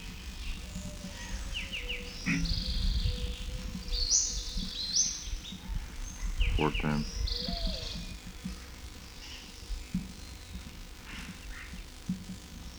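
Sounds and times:
birds chirping and whistling: 0.4 - 8.2
speech: 6.6 - 7.2.

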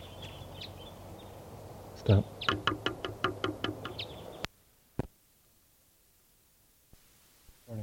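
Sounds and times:
bird giving harsh calls: 0.0 - 1.4, 2.0 - 4.5
speech: 2.0 - 3.0.

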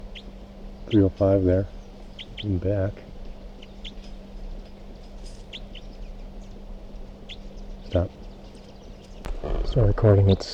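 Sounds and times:
bird chirps at dawn: 0.0 - 2.6, 3.4 - 4.3, 4.9 - 9.3
low hum: 0.0 - 10.5
speech: 0.9 - 1.8, 2.4 - 3.1, 7.9 - 8.2, 9.8 - 10.5.

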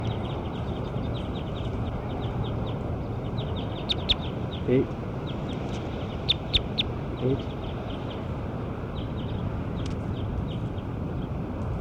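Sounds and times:
short high-pitched bird calls: 0.0 - 8.2
constant low rumble: 0.0 - 11.7
speech: 4.7 - 5.0, 7.2 - 7.5.

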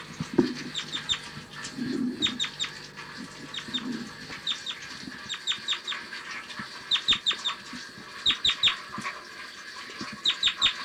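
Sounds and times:
bird flight calls: 0.0 - 6.0
soft clucking sounds: 0.0 - 9.1.

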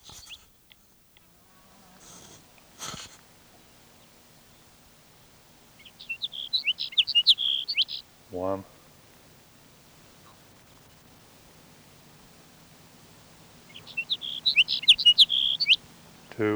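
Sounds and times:
hiss: 0.0 - 16.5
sage sparrow song: 0.0 - 16.5
soft rustles: 0.0 - 16.5
speech: 8.4 - 8.7.

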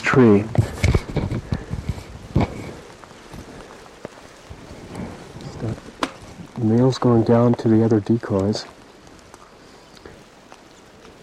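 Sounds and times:
gusty low rumbles: 0.0 - 8.0
heavy rain outdoors: 0.0 - 11.2
speech: 0.1 - 0.6, 6.6 - 8.8.

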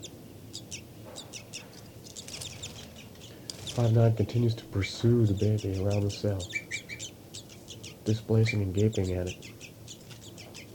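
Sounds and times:
bird flight calls with short high chirps: 0.0 - 10.7
low steady rumble: 0.0 - 10.7
speech: 3.8 - 6.6, 8.1 - 9.5.

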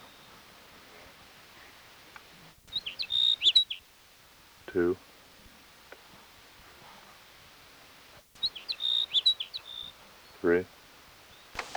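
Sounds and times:
sage sparrow song: 0.0 - 0.5, 2.6 - 3.9, 8.4 - 10.6
speech: 4.7 - 5.1, 10.4 - 10.8.

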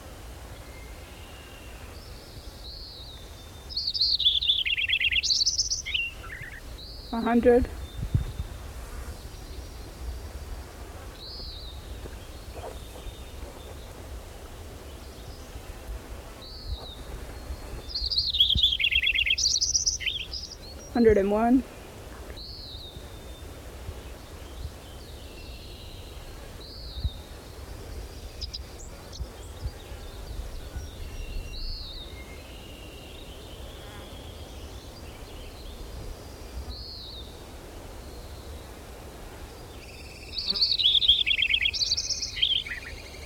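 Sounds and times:
robin singing: 0.6 - 8.5, 14.8 - 27.3, 27.9 - 37.3, 39.8 - 43.2
speech: 7.1 - 7.8, 21.0 - 21.7.

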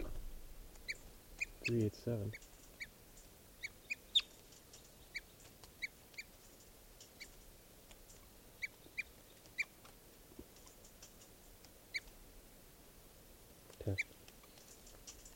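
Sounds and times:
small bird giving sharp high-pitched alarm chips: 0.8 - 6.4, 8.1 - 9.8, 11.9 - 12.2, 13.9 - 15.3
speech: 1.7 - 2.5.

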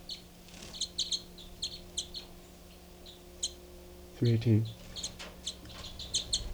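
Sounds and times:
faint steady hum: 0.0 - 6.5
two birds chirping: 0.0 - 6.5
speech: 4.2 - 4.8.

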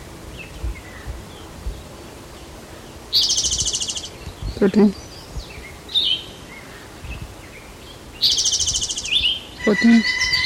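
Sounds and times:
woodpecker calling: 3.1 - 4.2, 8.2 - 10.4
speech: 4.6 - 5.0, 9.7 - 10.2.

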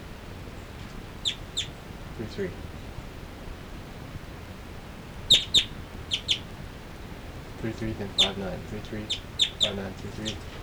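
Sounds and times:
faint noise: 0.0 - 10.6
birds chirping as they move from perch to perch: 0.4 - 3.2, 5.0 - 10.6
speech: 2.2 - 2.8, 7.6 - 10.6.

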